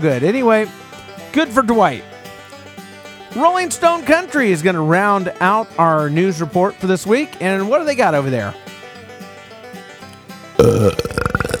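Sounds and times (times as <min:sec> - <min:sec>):
speech: 0:00.0 - 0:02.1, 0:03.3 - 0:08.6, 0:10.6 - 0:11.1
loud wet belch: 0:10.6 - 0:11.5.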